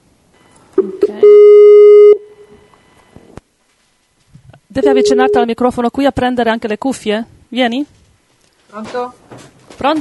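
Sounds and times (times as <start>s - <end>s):
Skype call connecting tone beep: 1.0s - 2.2s, 4.8s - 5.5s
speech: 4.8s - 8.0s, 8.7s - 9.9s.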